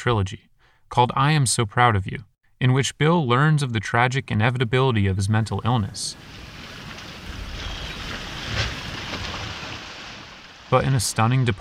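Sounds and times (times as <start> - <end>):
speech: 0.0 - 6.5, 10.7 - 11.6
light rush of wind: 5.8 - 11.1
ocean waves lapping: 5.9 - 11.6.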